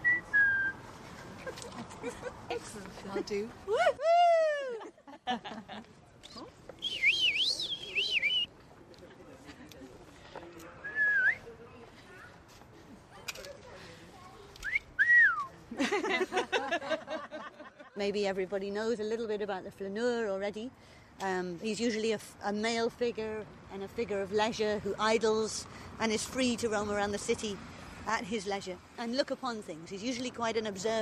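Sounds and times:
several people whistling playfully: 0:00.0 - 0:00.8, 0:06.8 - 0:08.5, 0:10.9 - 0:11.4, 0:14.6 - 0:15.5
laughter: 0:01.3 - 0:02.4, 0:03.7 - 0:06.0, 0:15.7 - 0:18.0
speech: 0:02.0 - 0:04.0, 0:05.3 - 0:07.0, 0:18.0 - 0:30.9
murmur of voices: 0:05.6 - 0:17.2.

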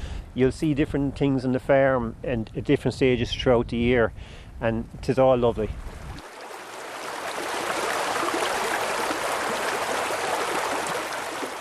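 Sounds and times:
speech: 0:00.4 - 0:06.0
flowing stream water rushing: 0:05.8 - 0:11.5.

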